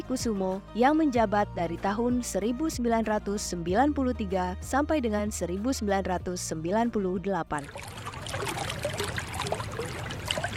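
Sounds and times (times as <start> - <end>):
speech: 0.1 - 8.0
water flowing in an artificial stream in a mosque courtyard: 7.6 - 10.5.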